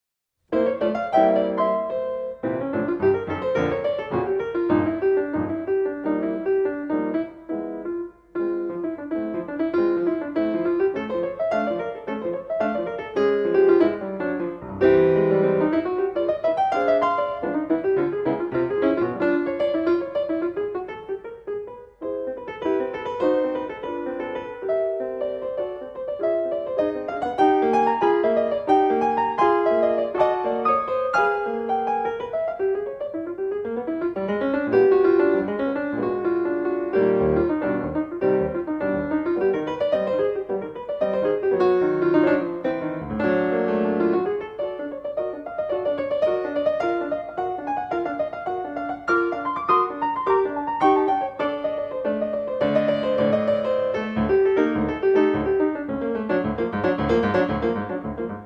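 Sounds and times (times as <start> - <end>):
piano piece: 0.4 - 58.4.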